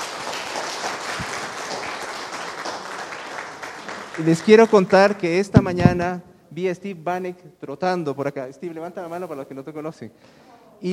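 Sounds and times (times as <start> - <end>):
audience applauding: 0.0 - 5.9
speech: 4.2 - 10.9.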